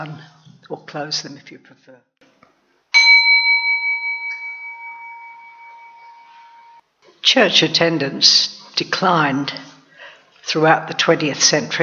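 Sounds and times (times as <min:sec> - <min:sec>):
speech: 0:00.0 - 0:02.2, 0:07.2 - 0:09.7, 0:10.4 - 0:11.8
chime struck marking the end of silent reflection: 0:03.0 - 0:06.8.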